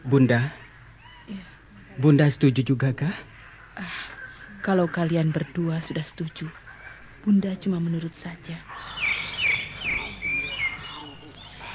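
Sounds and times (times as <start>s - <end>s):
speech: 0.0s - 0.6s, 1.3s - 6.6s, 7.2s - 9.0s
birds chirping as they fly away: 0.0s - 11.7s
low steady murmur: 0.0s - 11.7s.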